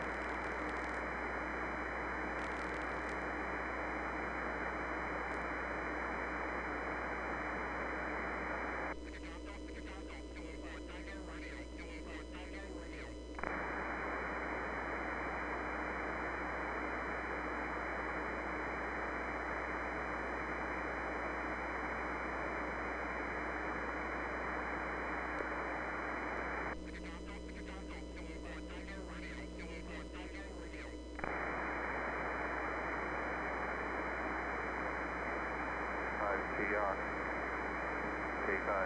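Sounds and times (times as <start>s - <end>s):
loud steady hiss of amateur radio static: 0.0s - 38.8s.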